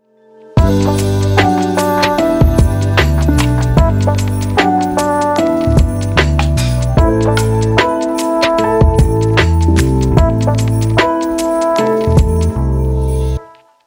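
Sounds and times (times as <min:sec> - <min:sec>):
chill Christmas music: 0:00.0 - 0:13.8.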